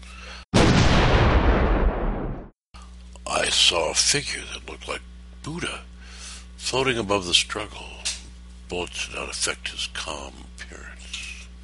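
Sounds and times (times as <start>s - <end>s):
loud cannon blast with rumbling roar: 0.6s - 2.6s
speech: 3.5s - 5.9s, 6.6s - 8.1s, 8.7s - 11.1s.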